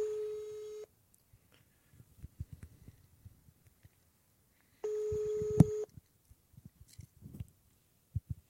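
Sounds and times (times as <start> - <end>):
buzzing outgoing phone call tones: 0.0 - 0.9, 4.8 - 5.9.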